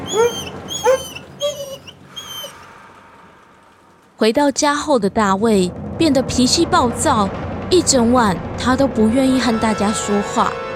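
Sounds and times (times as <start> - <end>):
dog left in a house whimpering: 0.0 - 2.7
speech: 4.2 - 10.6.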